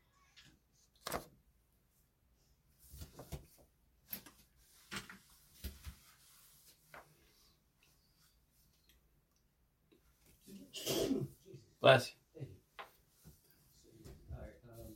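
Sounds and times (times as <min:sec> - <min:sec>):
small movement noises: 0:00.0 - 0:10.7, 0:12.4 - 0:14.9
person sneezing: 0:10.6 - 0:11.4.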